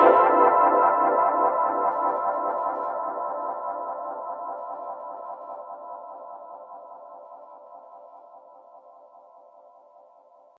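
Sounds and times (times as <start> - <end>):
synth: 0.0 - 2.6.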